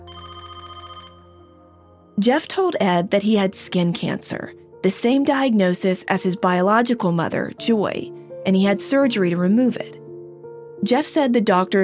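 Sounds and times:
telephone ringing with a trilling electronic bell: 0:00.0 - 0:01.9
speech: 0:02.2 - 0:10.0, 0:10.8 - 0:11.8.

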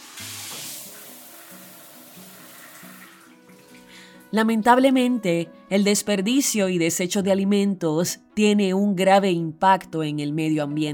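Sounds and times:
shower water running: 0:00.0 - 0:04.3
speech: 0:04.3 - 0:10.9.

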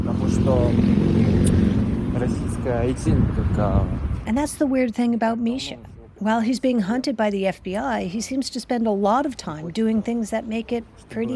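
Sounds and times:
motorcycle engines rumbling on a street: 0:00.0 - 0:04.6
speech: 0:00.3 - 0:01.3, 0:02.2 - 0:11.3.

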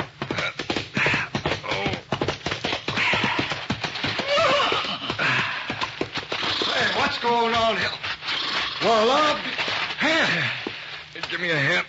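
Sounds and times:
horse hooves galloping along a trail: 0:00.0 - 0:11.8
horse whinnying: 0:02.9 - 0:07.2, 0:08.2 - 0:09.2
speech: 0:08.8 - 0:09.5, 0:11.4 - 0:11.8.

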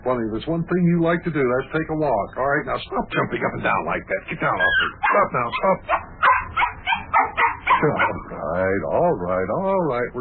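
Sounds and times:
speech: 0:00.1 - 0:06.1, 0:07.8 - 0:10.1
dog whimpering and yipping excitedly, jumping up and down, eager for a walk: 0:04.6 - 0:08.3.

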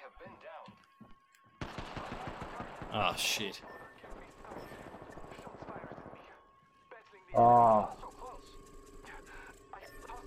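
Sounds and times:
video game gunfire: 0:01.6 - 0:06.4
speech: 0:02.9 - 0:03.8, 0:07.4 - 0:08.0.

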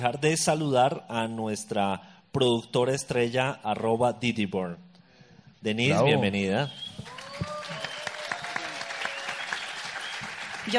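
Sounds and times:
speech: 0:00.0 - 0:04.9, 0:05.6 - 0:07.5
whistles: 0:06.6 - 0:10.5
applause from a small group: 0:07.0 - 0:10.7
cheers: 0:07.0 - 0:10.7.

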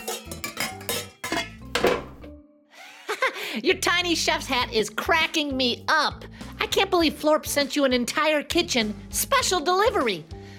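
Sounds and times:
metal baking sheet of chocolate chip cookies clanking and scraping against oven rack: 0:00.0 - 0:02.2
speech: 0:03.6 - 0:10.4.

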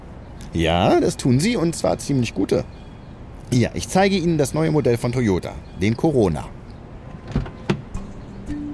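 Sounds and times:
speech: 0:00.5 - 0:02.8, 0:03.5 - 0:06.6
car door clicking open: 0:07.2 - 0:08.0.

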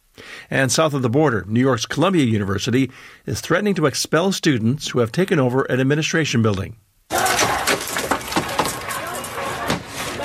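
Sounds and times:
speech: 0:00.5 - 0:06.8
crowd voices and commotion: 0:07.1 - 0:10.2
windows being smashed: 0:07.1 - 0:10.2.

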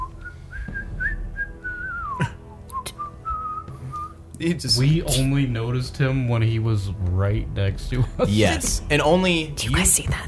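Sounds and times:
person whistling a wandering tune: 0:00.0 - 0:04.2
speech: 0:04.4 - 0:10.2.

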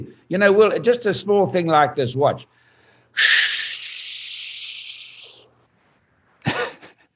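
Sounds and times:
speech: 0:00.0 - 0:03.5
short sharp breath: 0:02.5 - 0:06.3
long hissing exhale as a breathing demonstration: 0:02.6 - 0:05.5.

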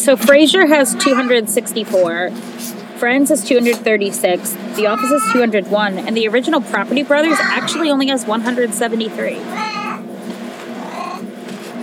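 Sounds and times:
speech: 0:00.0 - 0:09.8
steady low hum: 0:00.0 - 0:11.8
cat screaming: 0:00.6 - 0:01.4, 0:04.8 - 0:05.5, 0:07.1 - 0:07.9, 0:09.4 - 0:10.0, 0:10.8 - 0:11.3.

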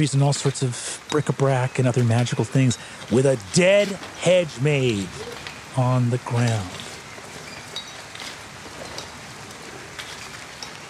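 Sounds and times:
speech: 0:00.0 - 0:06.8
light drizzle falling outside, echoing in a stone chamber: 0:00.0 - 0:10.8.

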